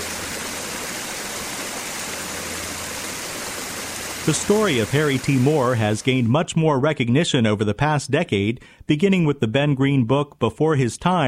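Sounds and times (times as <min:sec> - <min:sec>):
water rushing over a memorial wall by a reflecting pool: 0:00.0 - 0:06.3
speech: 0:04.2 - 0:11.2.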